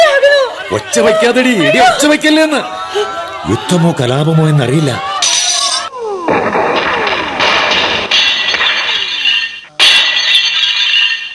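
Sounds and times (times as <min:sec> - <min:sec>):
speech: 0:00.7 - 0:05.1
glass-like clinks: 0:05.2 - 0:05.9, 0:08.1 - 0:11.3
heavy debris falling: 0:06.3 - 0:11.3
house collapsing with crashing and breaking: 0:06.3 - 0:11.3.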